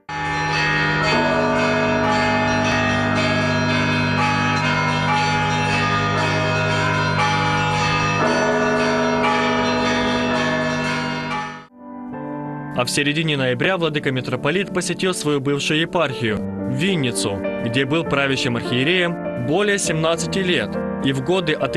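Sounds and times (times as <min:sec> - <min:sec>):
large new church bells pealing in the Holy Dormition Cathedral bell tower in Odesa: 0:00.0 - 0:11.7, 0:16.6 - 0:21.7
speech: 0:12.8 - 0:21.7.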